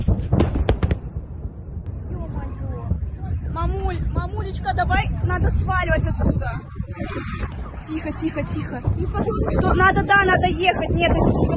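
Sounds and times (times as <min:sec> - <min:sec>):
sharp loud explosions: 0:00.0 - 0:11.5
wind rumble: 0:00.0 - 0:11.5
speech: 0:04.6 - 0:11.5.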